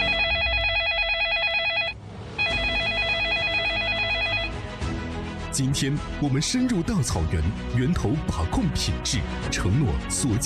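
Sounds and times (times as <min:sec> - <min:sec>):
telephone ringing with fast electronic trilling: 0:00.0 - 0:04.6
speech: 0:05.6 - 0:10.4.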